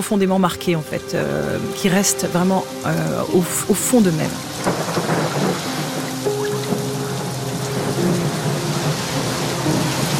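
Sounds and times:
speech: 0.0s - 5.4s
heavy rain pouring in a storm: 0.2s - 10.1s
deep thunder rumbling: 3.2s - 10.1s.

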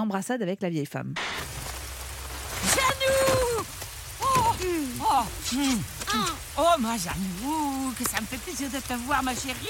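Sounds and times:
speech: 0.0s - 1.6s, 5.2s - 9.6s
steady rain: 1.2s - 9.6s
voices exclaiming and greeting each other: 2.6s - 9.6s.

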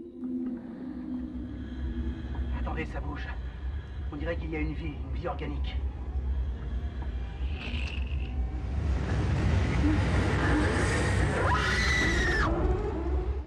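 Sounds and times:
dense rumbling wash of noise: 0.3s - 13.4s
speech: 2.8s - 3.4s, 4.1s - 5.9s
shrill drawn-out scream in a monster film excerpt: 11.3s - 12.6s.

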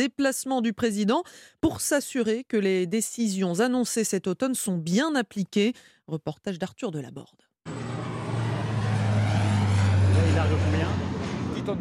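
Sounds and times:
speech: 0.0s - 7.8s
Dash water bomber aircraft engine droning overhead at Nîmes air base: 7.7s - 11.7s.

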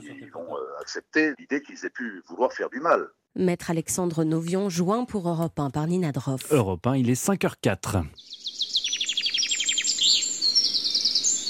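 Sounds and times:
speech: 0.3s - 8.4s
birds singing trills and warbling phrases: 8.1s - 11.4s.

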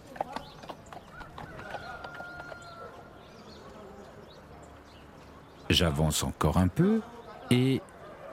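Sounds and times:
donkey hooves clip-clopping on hard ground in a small village: 0.0s - 5.6s
speech: 5.7s - 8.3s.

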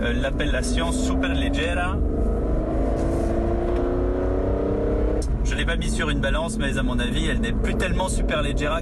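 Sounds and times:
speech: 0.0s - 2.4s, 5.4s - 8.8s
powerful sports car engine revving while driving: 0.0s - 8.6s.

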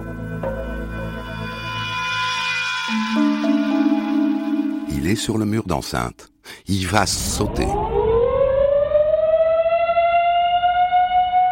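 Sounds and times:
loud wailing prison escape alarm siren: 1.3s - 5.2s, 7.6s - 11.5s
speech: 5.1s - 7.9s.

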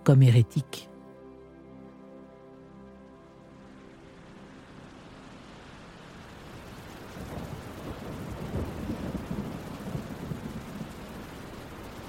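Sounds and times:
speech: 0.0s - 0.9s
heavy rain pouring on the Place Saint-Étienne in Toulouse: 1.5s - 12.0s
low thunder rumbling: 6.4s - 12.0s.

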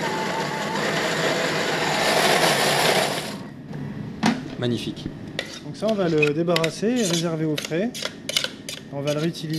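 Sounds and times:
blender puréeing hot roasted figs: 0.0s - 3.5s
speech: 4.6s - 8.2s, 8.9s - 9.5s.

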